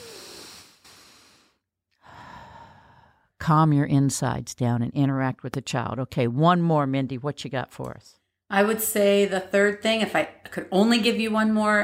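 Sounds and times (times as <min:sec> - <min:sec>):
slow deep breath in and out: 0:00.0 - 0:03.4
speech: 0:03.4 - 0:11.8.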